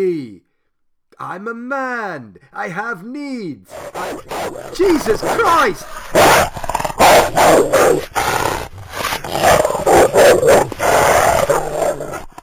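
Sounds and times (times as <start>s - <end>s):
speech: 0.0s - 0.4s, 1.2s - 6.6s, 7.3s - 8.4s
wolf growling and snarling: 3.7s - 12.4s.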